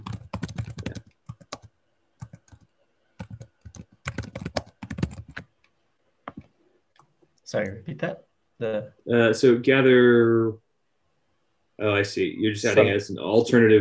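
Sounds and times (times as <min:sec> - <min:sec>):
computer keyboard typing: 0:00.0 - 0:05.5
speech: 0:07.5 - 0:10.6, 0:11.8 - 0:13.7.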